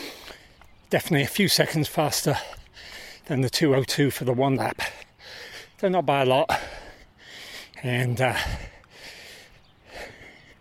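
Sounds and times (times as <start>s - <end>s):
speech: 0.9s - 6.8s, 7.8s - 8.7s
heavy labored breathing after running laps of a track in Kingston: 2.3s - 3.3s, 4.8s - 5.8s, 6.5s - 10.5s.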